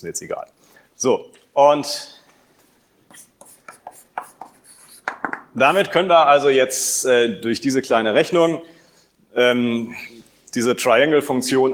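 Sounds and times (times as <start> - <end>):
speech: 0.0 - 2.2, 5.2 - 11.7
faint hiss: 0.0 - 11.7
writing on a board during a lecture: 3.1 - 5.8.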